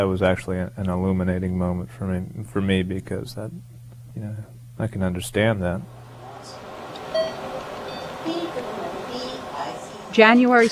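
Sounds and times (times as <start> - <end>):
speech: 0.0 - 6.6, 10.2 - 10.6
steady hum of room noise: 0.0 - 10.6
short electronic beeps: 7.1 - 8.2.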